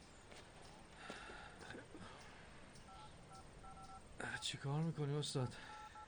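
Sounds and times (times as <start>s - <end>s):
rustling outdoor background in a forest: 0.0s - 6.0s
phone keypad beeps: 2.8s - 4.6s, 5.7s - 6.0s
speech: 4.4s - 5.8s.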